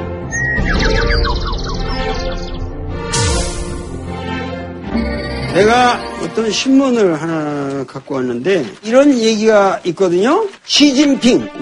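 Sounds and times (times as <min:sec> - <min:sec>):
bird chirping, possibly a toy bird: 0:00.3 - 0:02.8
speech: 0:05.6 - 0:11.6.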